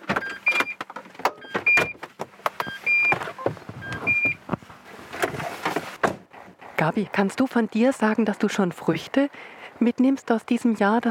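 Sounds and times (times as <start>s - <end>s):
clicks and clunks of car doors and fittings: 0.0s - 6.3s
short electronic beeps of a car being parked: 2.6s - 3.2s, 3.8s - 4.4s
speech: 6.8s - 11.0s.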